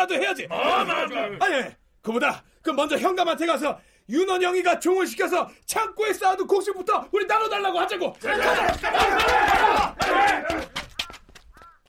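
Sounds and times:
speech: 0.0s - 10.8s
crowd of angry villagers shouting in an uproar over their seized land: 0.4s - 1.4s, 8.2s - 10.8s.

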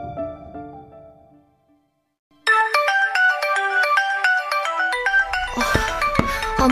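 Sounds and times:
mobile phone ringtone ringing: 2.5s - 6.6s.

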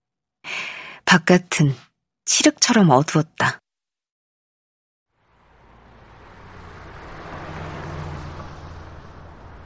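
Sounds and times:
speech: 1.1s - 3.6s
trucks roaring past on a wide four-lane road: 5.1s - 9.6s.

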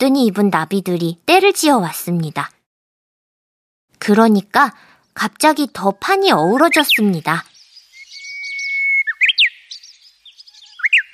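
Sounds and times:
speech: 0.0s - 2.6s, 4.0s - 7.5s
oriole singing with long whistle and quick chirping phrases: 6.6s - 11.1s.

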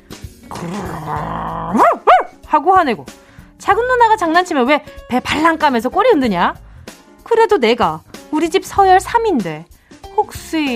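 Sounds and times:
voice imitating angry pet dog growling: 0.5s - 2.3s
speech: 0.6s - 6.6s, 7.3s - 10.7s.

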